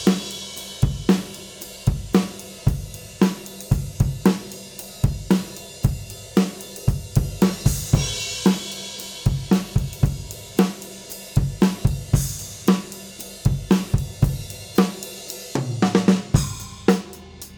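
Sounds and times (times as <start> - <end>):
wet drums: 0.0 - 17.1.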